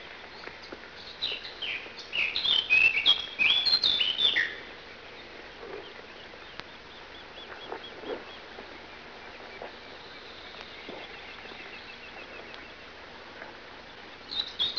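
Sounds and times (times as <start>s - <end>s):
faint bird calls in a park: 0.2s - 14.7s
Eurasian blackcap singing in a park: 1.2s - 4.6s.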